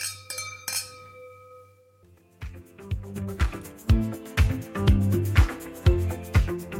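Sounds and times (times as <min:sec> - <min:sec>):
wine glasses clinking in a toast: 0:00.0 - 0:02.0
rhythmic bass-heavy music track: 0:02.5 - 0:06.7.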